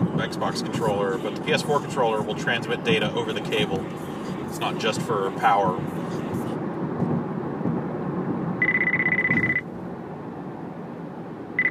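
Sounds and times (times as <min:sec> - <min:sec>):
steady rumbling noise: 0:00.0 - 0:11.6
speech: 0:00.2 - 0:06.0
mobile phone ringing with a warbling electronic tone: 0:08.6 - 0:09.6.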